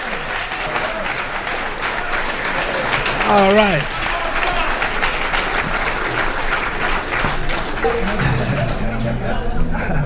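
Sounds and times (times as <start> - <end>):
audience applause with many hands clapping: 0.0 - 9.9
speech: 3.3 - 4.0, 7.8 - 10.0
laughter: 7.0 - 10.0.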